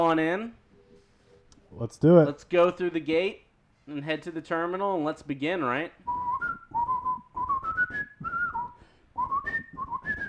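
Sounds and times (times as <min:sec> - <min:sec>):
speech: 0:00.0 - 0:00.6, 0:01.7 - 0:06.2
person whistling a lively film theme tune: 0:06.1 - 0:10.2.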